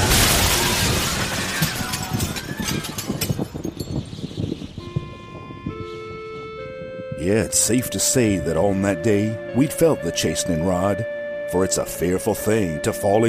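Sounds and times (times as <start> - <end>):
scattered glass shards clinking and tinkling as they settle: 0.0 - 4.2
windows shattering: 0.0 - 4.2
speech: 7.3 - 13.2.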